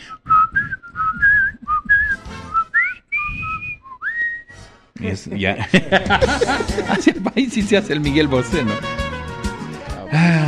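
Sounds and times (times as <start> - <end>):
person whistling a lively song melody: 0.0 - 4.6
speech: 5.0 - 9.0
laughter: 5.4 - 8.8, 10.1 - 10.4.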